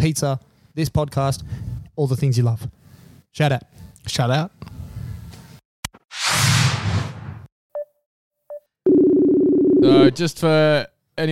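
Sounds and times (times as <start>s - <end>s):
speech: 0.0s - 4.8s, 9.8s - 11.3s
brief whoosh: 6.1s - 7.5s
buzzy phone ringing tone of an unanswered outgoing call: 8.9s - 10.1s.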